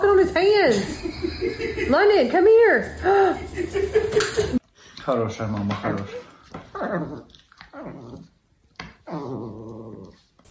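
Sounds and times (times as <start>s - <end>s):
speech: 0.0s - 8.0s
laughter: 0.8s - 2.3s, 2.9s - 4.6s
dog growling: 5.8s - 10.3s.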